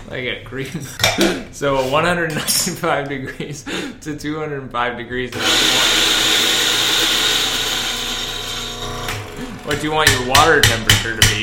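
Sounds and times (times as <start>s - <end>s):
speech: 0.1s - 6.3s, 9.7s - 11.4s
coffee grinder grinding coffee beans: 5.4s - 9.9s.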